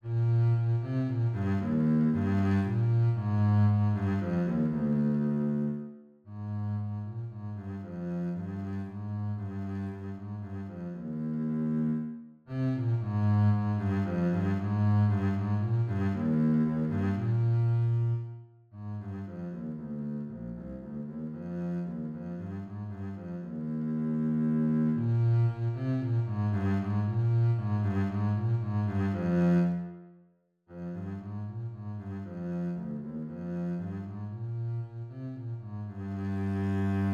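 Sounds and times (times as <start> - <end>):
string bass: 0.0 - 30.0, 30.7 - 37.1.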